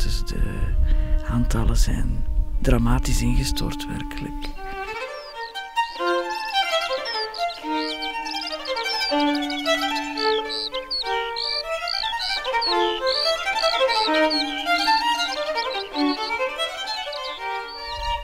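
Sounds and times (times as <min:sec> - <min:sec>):
skylark singing in a meadow: 0:00.0 - 0:18.2
speech: 0:01.4 - 0:04.5
redshank calling in a meadow: 0:02.8 - 0:18.2
swallow calling in a meadow: 0:04.4 - 0:18.2.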